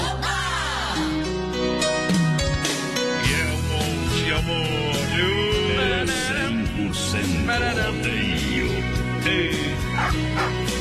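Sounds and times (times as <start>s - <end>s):
steady musical background: 0.0s - 10.7s
dogs barking: 9.9s - 10.7s.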